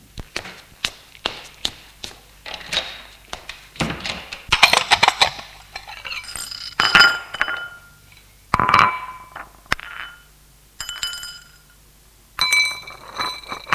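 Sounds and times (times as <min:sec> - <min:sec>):
dishes and glassware clinking in a kitchen during breakfast preparation: 0:03.8 - 0:11.8, 0:12.4 - 0:13.7.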